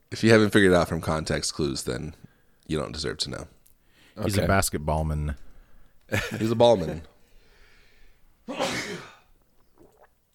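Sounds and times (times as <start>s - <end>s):
speech: 0.2s - 3.6s, 4.2s - 5.5s, 6.1s - 7.1s
quiet breathing: 2.2s - 2.7s, 3.7s - 4.3s, 5.3s - 6.1s, 7.1s - 8.4s
sneeze: 8.5s - 9.3s.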